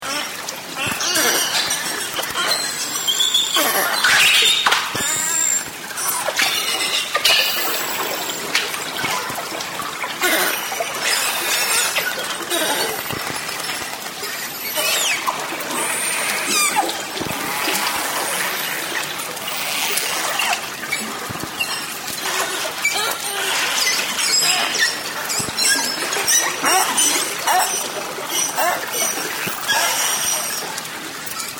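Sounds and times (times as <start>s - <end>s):
beluga whale: 0.0s - 31.5s.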